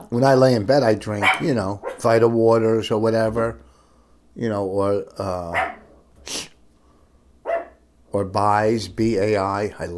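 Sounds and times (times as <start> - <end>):
speech: 0.1 - 3.6, 4.4 - 6.4, 8.1 - 9.9
dog barking: 1.2 - 2.1, 5.5 - 5.9, 7.5 - 7.8.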